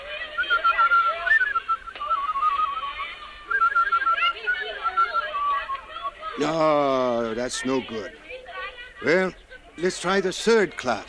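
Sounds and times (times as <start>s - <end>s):
person whistling a wavering tune: 0.4s - 2.9s, 3.5s - 5.3s
speech: 6.4s - 8.2s, 9.0s - 11.0s.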